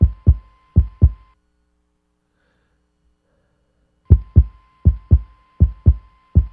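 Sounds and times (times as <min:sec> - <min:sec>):
heartbeat-like thumps from pushing in the bottom of a small plastic trash can: 0:00.0 - 0:01.2, 0:04.1 - 0:06.5.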